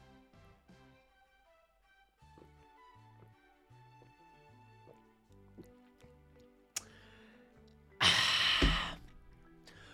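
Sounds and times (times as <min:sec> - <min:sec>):
soft music: 0:00.0 - 0:09.9
loud breathy exhale: 0:06.8 - 0:09.1, 0:09.7 - 0:09.9.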